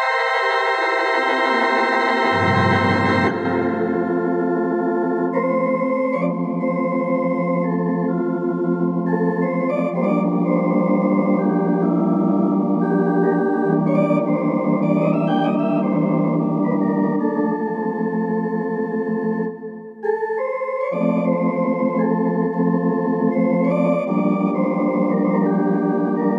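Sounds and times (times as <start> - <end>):
theatre organ synth patch: 0.1 - 19.4, 20.4 - 26.3.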